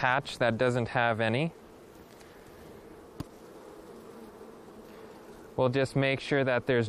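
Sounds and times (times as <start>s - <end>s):
speech: 0.0s - 1.6s, 5.6s - 6.8s
honeybees buzzing around an open hive frame: 0.0s - 6.8s
sharp tap: 3.2s - 3.4s.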